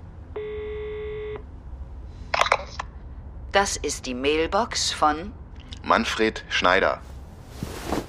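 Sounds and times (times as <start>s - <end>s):
steady desk telephone tone: 0.4s - 1.4s
speech: 3.6s - 7.1s.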